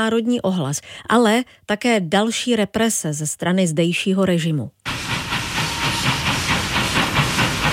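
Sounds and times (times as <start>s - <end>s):
speech: 0.0s - 5.0s
steam train chugging: 4.9s - 7.7s.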